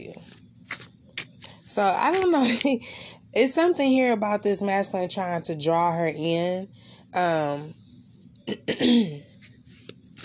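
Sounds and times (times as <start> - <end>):
speech: 1.8 - 7.8, 8.5 - 9.3
person clearing throat: 8.5 - 9.2.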